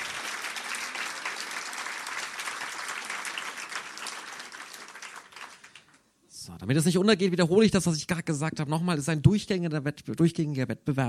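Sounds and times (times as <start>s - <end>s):
crowd applauding a poetry slam performer: 0.0s - 6.0s
speech: 6.5s - 11.0s.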